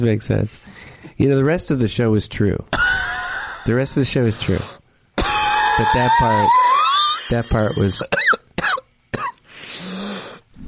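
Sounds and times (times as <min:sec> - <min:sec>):
speech: 0:00.0 - 0:02.8, 0:03.6 - 0:04.8, 0:05.8 - 0:06.6, 0:07.3 - 0:08.2
wet phlegmy coughing with gurgling hack: 0:05.2 - 0:06.5, 0:08.0 - 0:09.4
rasping phlegmy inhale: 0:09.5 - 0:10.5.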